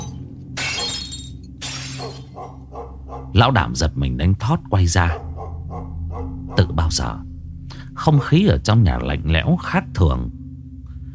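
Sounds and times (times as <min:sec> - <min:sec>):
flower vase and fruit plate falling from an altar and shattering on floor: 0:00.0 - 0:02.4
low steady hum: 0:00.0 - 0:11.1
speech: 0:03.4 - 0:05.3, 0:06.6 - 0:07.3, 0:08.0 - 0:10.4.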